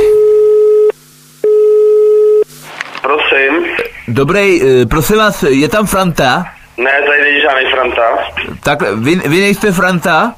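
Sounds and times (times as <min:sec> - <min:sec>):
phone line ringback tone while a call is dialled: 0:00.1 - 0:02.5
speech: 0:04.2 - 0:10.3.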